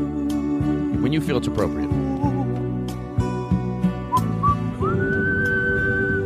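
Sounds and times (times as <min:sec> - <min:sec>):
music with rhythmic plucked accompaniment: 0:00.0 - 0:06.2
speech: 0:01.1 - 0:02.4
person whistling a short tune: 0:04.1 - 0:06.2.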